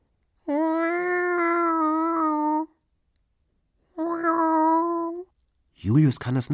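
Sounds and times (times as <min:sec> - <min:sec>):
whimpering cries: 0:00.5 - 0:02.7, 0:04.0 - 0:05.2
speech: 0:05.8 - 0:06.5.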